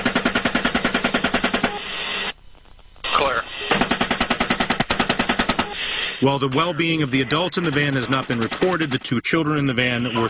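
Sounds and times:
automatic machine gun fire: 0:00.0 - 0:01.8, 0:03.7 - 0:05.8, 0:06.4 - 0:10.0
speech: 0:06.2 - 0:10.2.

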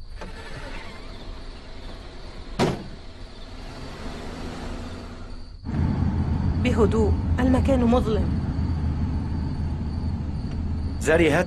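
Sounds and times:
window opening: 0:00.0 - 0:05.5
continuous whirring rush: 0:00.2 - 0:11.4
loud low rumble: 0:04.9 - 0:11.4
speech: 0:06.6 - 0:08.4, 0:11.0 - 0:11.4.

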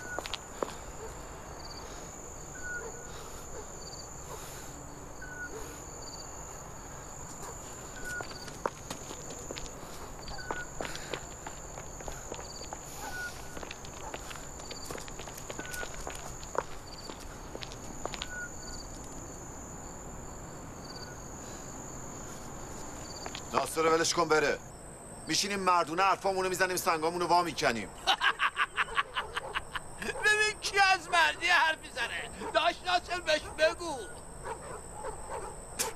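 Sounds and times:
footsteps of people walking together: 0:00.0 - 0:00.9, 0:07.2 - 0:19.3, 0:22.4 - 0:23.6
crickets chirping: 0:00.0 - 0:35.9
speech: 0:23.6 - 0:24.6, 0:25.3 - 0:28.1
laughter: 0:28.0 - 0:30.2.

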